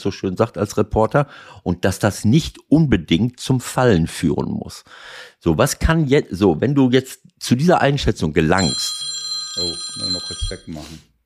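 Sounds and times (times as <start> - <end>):
speech: 0.0 - 11.1
alarm clock ringing: 8.6 - 10.8.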